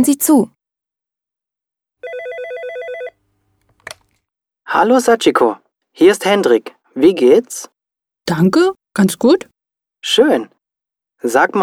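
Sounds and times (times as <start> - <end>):
speech: 0.0 - 0.6, 4.7 - 7.7, 8.3 - 10.6, 11.2 - 11.6
telephone bell ringing: 2.0 - 3.2.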